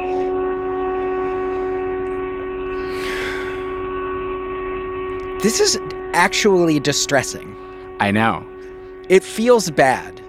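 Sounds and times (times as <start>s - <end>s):
storm warning sirens droning: 0.0s - 10.2s
breathy rush of noise: 2.7s - 3.9s
speech: 5.4s - 8.5s, 9.1s - 10.2s.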